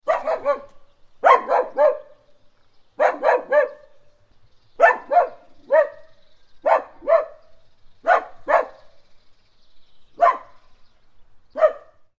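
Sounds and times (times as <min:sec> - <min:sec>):
dog noise: 0:00.1 - 0:02.2, 0:03.0 - 0:03.9, 0:04.8 - 0:08.9.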